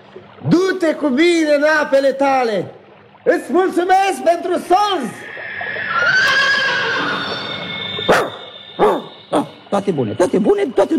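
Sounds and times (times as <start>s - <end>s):
speech: 0.2s - 5.2s, 8.8s - 10.9s
horse whinnying: 5.2s - 9.6s.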